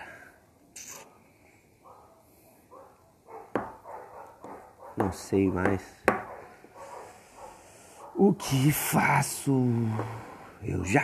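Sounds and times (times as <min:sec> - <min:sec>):
pack of dogs barking in short yaps: 0:01.8 - 0:08.2
speech: 0:05.0 - 0:06.0, 0:08.2 - 0:11.0.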